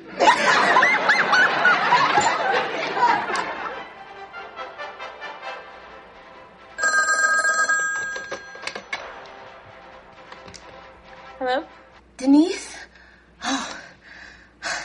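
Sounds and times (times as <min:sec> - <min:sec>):
laughter: 0:00.0 - 0:04.0
telephone ringing on outgoing call: 0:06.8 - 0:08.9.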